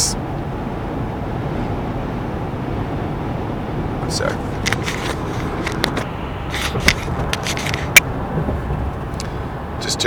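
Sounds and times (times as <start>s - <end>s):
road rumble from inside a moving pickup truck: 0.0s - 10.0s
sharp clicks and light rattles: 4.0s - 9.3s
speech: 4.1s - 4.5s.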